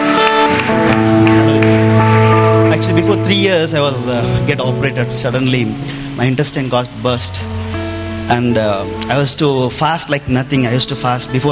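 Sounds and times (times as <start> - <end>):
audience clapping in a steady rhythm to praise God: 0.0 - 5.1
loud sustained keyboard music: 0.0 - 11.5
speech: 3.2 - 7.6, 8.3 - 11.5.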